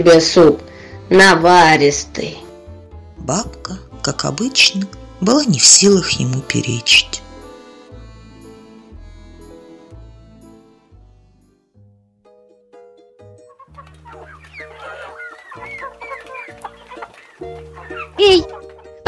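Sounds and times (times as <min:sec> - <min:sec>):
speech: 0:00.0 - 0:02.4, 0:03.2 - 0:07.2, 0:18.2 - 0:18.5
steady musical backing: 0:00.0 - 0:19.0
chicken clucking: 0:13.5 - 0:19.0.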